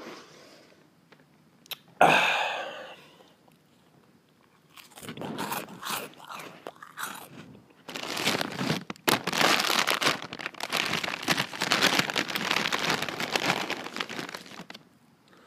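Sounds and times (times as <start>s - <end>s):
chip bag crinkling: 4.7s - 14.9s.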